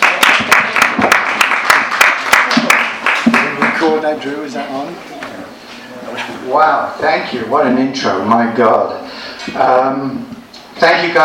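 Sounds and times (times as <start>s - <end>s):
crowd applauding: 0.0s - 4.0s
sharp loud claps from someone: 0.0s - 4.0s
speech: 4.1s - 5.1s, 6.5s - 11.2s.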